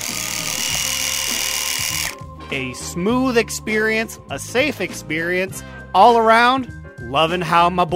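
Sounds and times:
electric body hair trimmer buzzing: 0.0s - 2.2s
speech: 2.5s - 7.9s.

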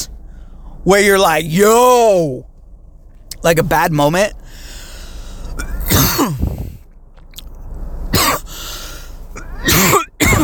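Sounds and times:
speech: 0.8s - 2.5s, 3.4s - 4.4s
throaty strained breaths: 4.4s - 5.6s, 8.5s - 9.4s
person coughing harshly in a coughing fit: 5.6s - 6.8s, 8.1s - 8.5s, 9.4s - 10.4s.

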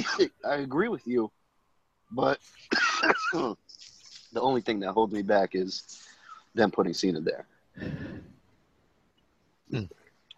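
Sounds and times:
person coughing sharply: 0.0s - 0.3s, 2.7s - 3.6s
speech: 0.0s - 1.4s, 2.1s - 8.3s, 9.7s - 10.0s
faint catch of breath: 7.8s - 8.3s.

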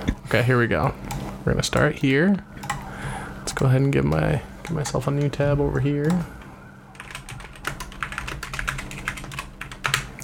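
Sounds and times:
low hum: 0.0s - 10.2s
speech: 0.3s - 2.7s, 3.6s - 6.4s
typing on a computer keyboard: 2.6s - 2.9s, 6.9s - 10.2s.

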